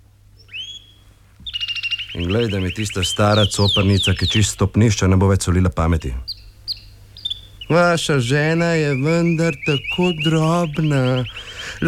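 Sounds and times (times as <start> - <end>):
caged shrike short bright chirp: 0.0 - 11.8
low steady hum: 0.0 - 11.8
caged shrike singing a thin whistled note: 0.4 - 4.7, 6.7 - 11.8
speech: 2.2 - 6.3, 7.7 - 11.8.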